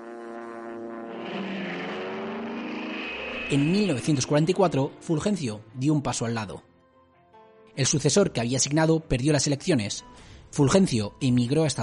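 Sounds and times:
propeller airplane flying overhead: 0.0s - 6.0s
speech: 3.5s - 6.7s, 7.8s - 11.8s.

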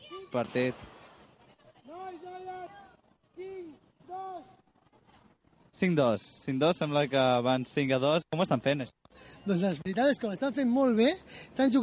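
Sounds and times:
faint noise: 0.0s - 11.8s
speech: 0.3s - 1.0s, 5.8s - 11.8s
coach shouting during a three-against-three tamborí match: 1.9s - 4.6s.

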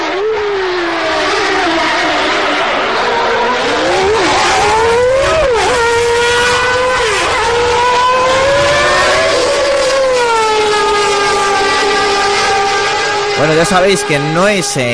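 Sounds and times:
old V8, V10 and V12 Formula 1 engines revving: 0.0s - 14.9s
speech: 13.5s - 14.9s.

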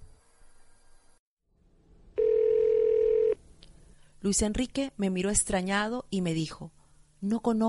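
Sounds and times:
faint noise: 0.0s - 7.6s
cellphone incoming call tone at night: 2.2s - 3.4s
speech: 4.2s - 7.6s.

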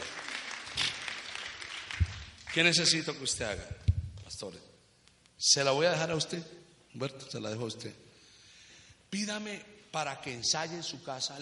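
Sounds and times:
audience applause: 0.0s - 2.8s
speech: 2.6s - 3.8s, 4.4s - 4.7s, 5.4s - 8.0s, 9.1s - 11.3s.

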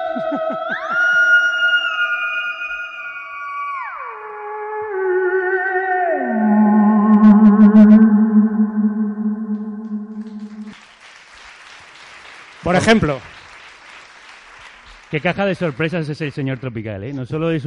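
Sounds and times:
laughter: 0.0s - 1.7s
eerie wavering electronic theremin tone with shimmering harmonics and slight echo: 0.0s - 10.7s
speech: 0.2s - 1.2s, 12.7s - 13.3s, 15.1s - 17.6s.

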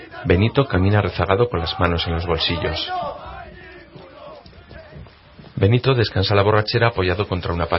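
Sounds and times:
rowdy gang of men shouting in empty streets: 0.0s - 5.4s
speech: 0.2s - 3.2s, 5.6s - 7.7s.

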